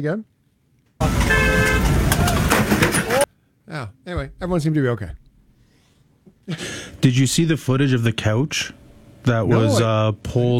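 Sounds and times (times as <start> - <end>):
speech: 0.0 - 0.3, 3.7 - 5.2, 6.5 - 10.5
car horn tooting at a street: 1.0 - 2.4.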